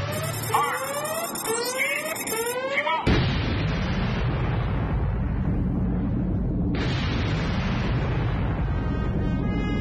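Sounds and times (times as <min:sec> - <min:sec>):
rising sweeping electronic tones: 0:00.1 - 0:02.6
massive explosion of an atomic bomb test: 0:03.1 - 0:09.6.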